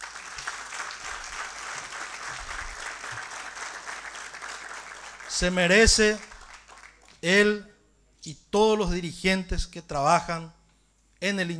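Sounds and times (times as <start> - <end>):
large crowd applauding: 0.0 - 7.2
speech: 5.3 - 6.3, 7.2 - 10.6, 11.2 - 11.5.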